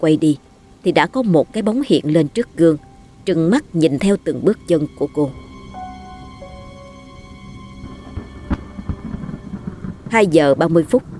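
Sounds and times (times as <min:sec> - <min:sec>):
speech: 0:00.0 - 0:05.5, 0:10.1 - 0:11.1
steady tonal hum: 0:00.0 - 0:11.1
thunder rumbling in a storm: 0:00.0 - 0:11.1
sharp thunder crack: 0:07.9 - 0:11.1.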